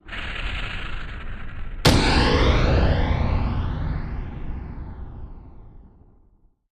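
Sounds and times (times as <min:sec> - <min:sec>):
rumble: 0:00.0 - 0:06.4
big impact sweep: 0:01.4 - 0:06.2.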